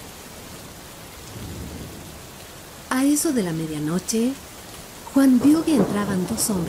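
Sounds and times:
heavy rain hiss in thunderstorm outside a church: 0:00.0 - 0:06.6
low thunder rumble outside a church: 0:01.2 - 0:02.9, 0:05.0 - 0:06.6
speech: 0:02.9 - 0:04.5, 0:05.2 - 0:06.6.

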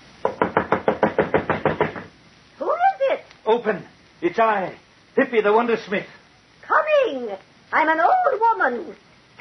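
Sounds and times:
urgent rapid knocking on a wooden door: 0:00.2 - 0:02.1
speech: 0:03.5 - 0:06.2, 0:07.1 - 0:09.0.

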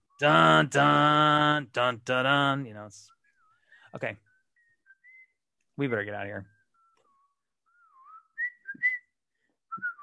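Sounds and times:
speech: 0:00.2 - 0:03.2, 0:03.9 - 0:04.3, 0:05.8 - 0:06.5
person whistling a theme-song melody: 0:04.6 - 0:05.4, 0:06.7 - 0:10.0.

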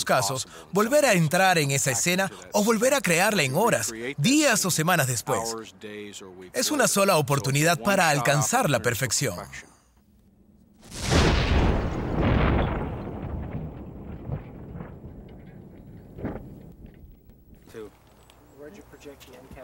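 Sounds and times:
speech: 0:00.1 - 0:09.8, 0:19.0 - 0:19.6
pipe bomb explosion: 0:10.8 - 0:17.0
scattered debris from explosion: 0:10.8 - 0:17.6.

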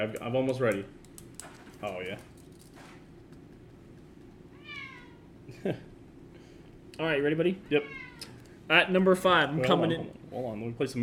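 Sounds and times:
speech: 0:00.0 - 0:01.0, 0:01.8 - 0:02.3, 0:05.6 - 0:05.9, 0:07.0 - 0:08.0, 0:08.7 - 0:11.0
low steady hum: 0:00.0 - 0:11.0
cat meowing: 0:04.5 - 0:05.3, 0:07.8 - 0:08.4.

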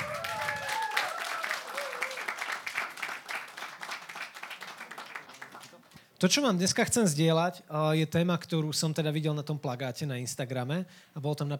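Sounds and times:
audience applause: 0:00.0 - 0:05.9
speech: 0:06.2 - 0:11.5.

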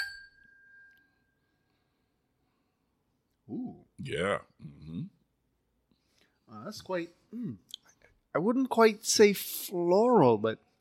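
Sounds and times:
whiskey glasses clinking in a toast: 0:00.0 - 0:01.2
speech: 0:03.5 - 0:05.2, 0:06.5 - 0:07.8, 0:08.4 - 0:10.7.

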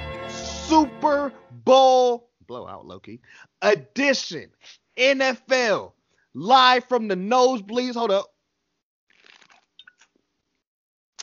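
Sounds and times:
speech: 0:00.7 - 0:08.3
wet slurping while drinking: 0:09.1 - 0:10.1.

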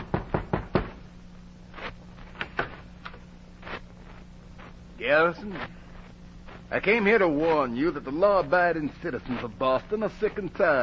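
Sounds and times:
knocking on a wooden printer's door in Boston: 0:00.0 - 0:01.0
faint low hum: 0:00.0 - 0:10.8
speech: 0:05.0 - 0:05.8, 0:06.7 - 0:10.8.

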